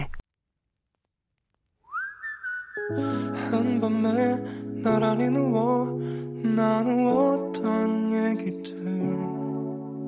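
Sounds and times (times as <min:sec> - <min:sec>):
bright sustained whistle-like melody of a song intro: 0:01.8 - 0:03.6
speech: 0:02.9 - 0:09.3.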